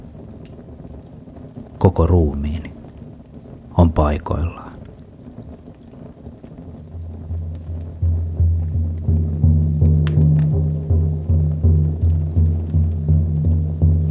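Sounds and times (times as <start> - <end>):
speech: 1.8 - 2.7, 3.8 - 4.6
resonant drum beat played beside a campfire: 6.8 - 14.0.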